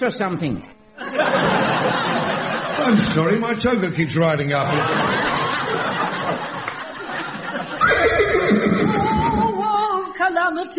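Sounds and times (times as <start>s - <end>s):
speech: 0.0s - 5.4s, 10.2s - 10.7s
laughter: 1.0s - 3.4s, 4.5s - 9.7s
horse whinny sound effect for a unicorn: 7.8s - 9.6s.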